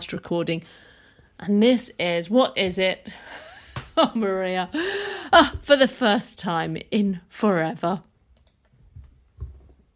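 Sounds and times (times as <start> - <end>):
speech: 0.1 - 8.1
computer mouse clicking: 8.3 - 8.8.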